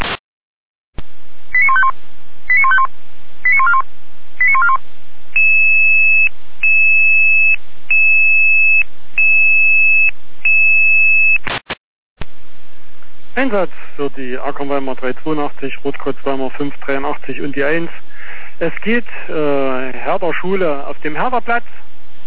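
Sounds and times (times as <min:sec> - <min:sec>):
electronic alarm call tone beeps over emergency dispatch radio: 0:01.6 - 0:03.8, 0:04.4 - 0:04.8, 0:05.4 - 0:11.4
speech: 0:13.4 - 0:22.2.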